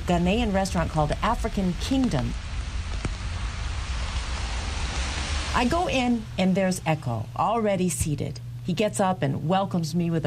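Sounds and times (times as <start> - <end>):
steady rain during a cold walk outdoors: 0.0 - 7.4
speech: 0.1 - 2.4, 5.6 - 10.2.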